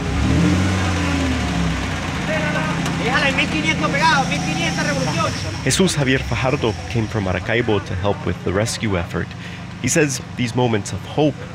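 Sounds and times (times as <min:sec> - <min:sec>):
heavy truck engine revving and straining while pulling a metal gate: 0:00.0 - 0:11.5
several people shouting and calling out: 0:02.4 - 0:08.0
speech: 0:03.3 - 0:11.5.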